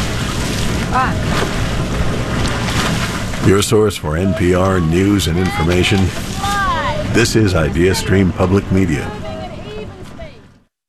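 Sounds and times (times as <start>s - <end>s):
rowing scull gliding through river water: 0.0s - 10.6s
speech: 0.9s - 1.6s, 3.4s - 9.2s.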